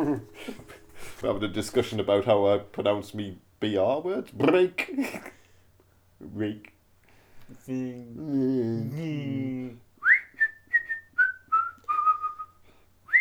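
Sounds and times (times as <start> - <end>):
person singing or humming: 0.0 - 1.9, 7.7 - 9.8
speech: 0.0 - 5.4, 6.2 - 6.7, 7.5 - 9.8
person whistling a tune: 10.0 - 13.2.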